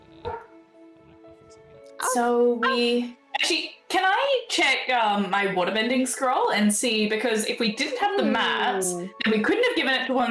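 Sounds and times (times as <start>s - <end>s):
dog barking: 0.2s - 0.5s, 2.0s - 2.9s
speech: 1.5s - 10.2s.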